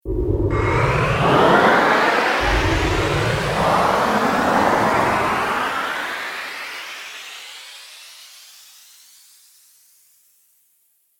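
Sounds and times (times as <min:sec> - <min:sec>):
science fiction teleport time travel sound effect: 0:00.4 - 0:08.1.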